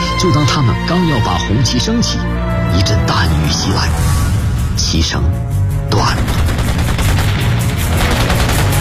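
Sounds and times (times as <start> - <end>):
speech: 0.2 - 4.2, 4.8 - 6.5
gunfire sound effect: 6.0 - 8.8.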